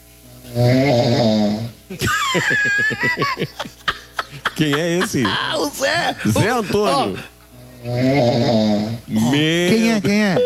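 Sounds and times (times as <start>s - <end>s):
recorded human snoring: 0.5s - 1.8s, 7.6s - 9.4s
speech: 0.6s - 1.2s, 1.9s - 3.9s, 4.6s - 10.4s
laughter: 1.9s - 7.3s.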